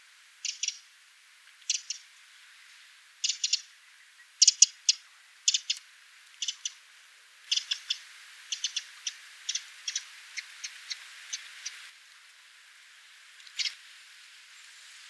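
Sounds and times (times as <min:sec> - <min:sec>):
Eurasian wren calling with short dry clicking bursts: 0:00.4 - 0:00.8, 0:01.7 - 0:02.0, 0:03.2 - 0:03.7, 0:04.4 - 0:06.8, 0:07.5 - 0:11.9.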